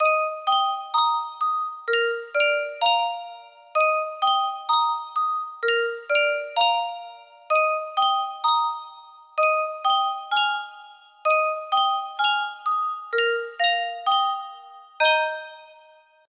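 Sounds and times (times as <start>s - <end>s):
music box playing: 0.0s - 16.2s.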